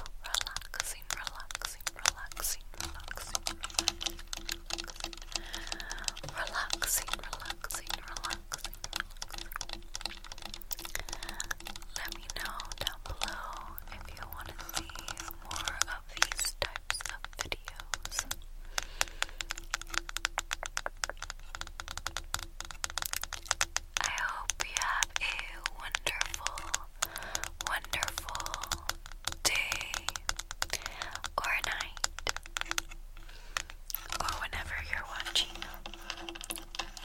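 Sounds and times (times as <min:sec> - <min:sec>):
fingertips tapping rapidly on and around a camera: 0:00.0 - 0:37.0.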